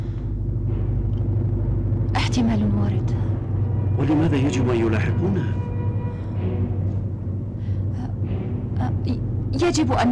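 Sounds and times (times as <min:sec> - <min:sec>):
car engine rumbling while driving: 0:00.0 - 0:10.1
faint road noise: 0:00.0 - 0:10.1
speech: 0:02.4 - 0:03.2, 0:04.0 - 0:05.7, 0:09.1 - 0:10.1.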